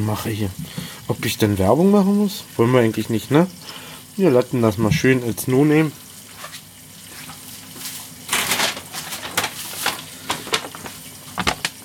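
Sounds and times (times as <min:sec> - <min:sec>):
speech: 0:00.0 - 0:06.0
plastic bag rustling and crinkling: 0:06.3 - 0:11.8.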